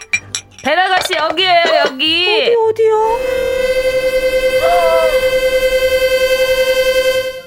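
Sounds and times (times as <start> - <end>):
speech: 0.6 - 4.0
long loud buzzy fart sound effect: 3.1 - 7.2.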